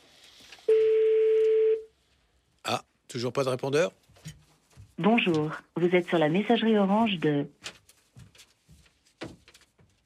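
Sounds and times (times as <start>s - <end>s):
telephone ringback tone on an unanswered call: 0.7s - 1.9s
speech: 2.7s - 4.4s, 5.0s - 7.6s.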